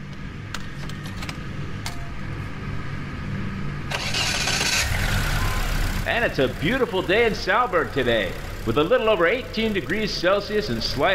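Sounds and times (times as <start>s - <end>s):
car engine cranking and idling: 3.9s - 11.1s
speech: 6.1s - 11.1s.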